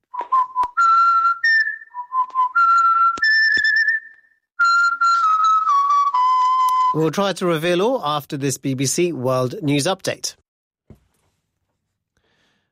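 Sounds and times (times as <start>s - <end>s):
person whistling a bright melodic tune: 0.1s - 7.0s
speech: 7.0s - 10.4s.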